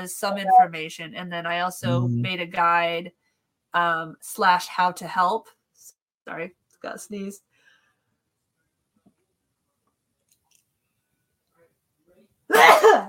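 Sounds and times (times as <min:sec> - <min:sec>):
speech: 0:00.0 - 0:07.5
brief voiced sound: 0:01.8 - 0:02.3
person sneezing: 0:12.5 - 0:13.0.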